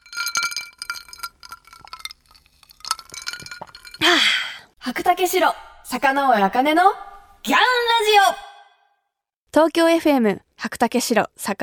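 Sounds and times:
glasses clinking in a toast: 0:00.0 - 0:04.3
speech: 0:04.9 - 0:08.4, 0:09.6 - 0:11.6.

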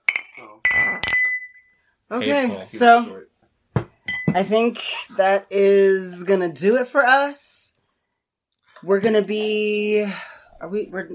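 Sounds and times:
glass bottles clinking together in a toast: 0:00.0 - 0:01.8, 0:04.0 - 0:04.9
speech: 0:02.1 - 0:03.3, 0:04.4 - 0:07.6, 0:08.8 - 0:11.1.

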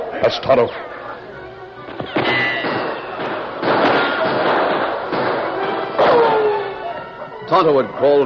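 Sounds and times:
speech: 0:00.3 - 0:00.9, 0:07.5 - 0:08.2
gunshots in a radio drama gunfight at a cave mouth: 0:01.9 - 0:06.4.

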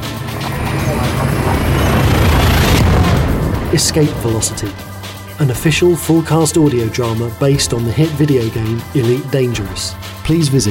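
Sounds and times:
spaceship hyperdrive engaging with deep roaring rumble and high whine: 0:00.0 - 0:05.3
speech: 0:03.7 - 0:10.6.

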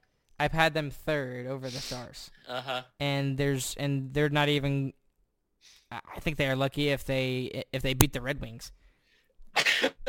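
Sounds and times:
speech: 0:00.4 - 0:05.0, 0:05.6 - 0:08.8
person sneezing: 0:09.6 - 0:10.0.

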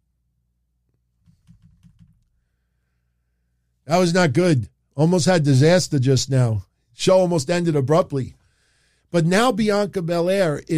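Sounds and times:
soft key clicks of typing on a computer keyboard: 0:01.2 - 0:02.3
speech: 0:03.9 - 0:08.4, 0:09.1 - 0:10.7.

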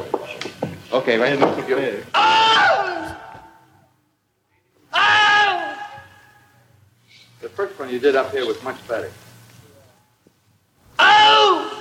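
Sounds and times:
speech: 0:00.9 - 0:02.4, 0:07.8 - 0:09.2
man screaming in imitation of an alligator bite: 0:02.1 - 0:03.6, 0:04.9 - 0:06.4, 0:10.9 - 0:11.7.

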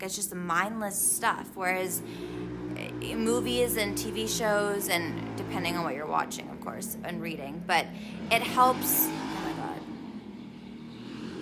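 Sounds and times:
speech: 0:00.0 - 0:09.3
old car engine revving outside: 0:00.6 - 0:11.4.

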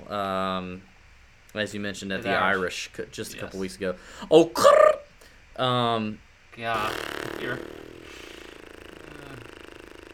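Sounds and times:
speech: 0:00.1 - 0:04.9, 0:05.6 - 0:07.8
low rumbling fart against a seat: 0:06.8 - 0:10.1.

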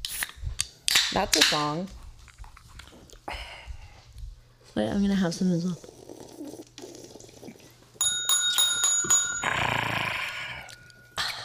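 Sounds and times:
speech: 0:01.1 - 0:02.0, 0:04.8 - 0:06.0
small bright bell ringing: 0:08.0 - 0:11.4.

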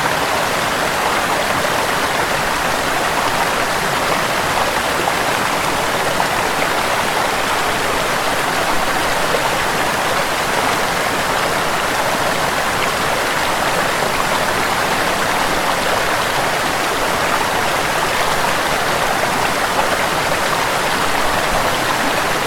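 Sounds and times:
waterfall pouring in a dense rush of water: 0:00.0 - 0:22.4.

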